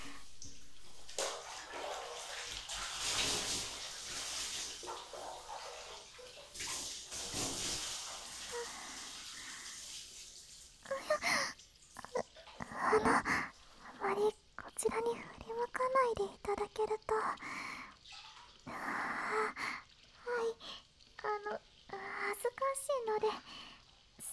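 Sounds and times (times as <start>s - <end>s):
bathwater poured and splashed while washing someone's back in a bath: 0.0s - 24.3s.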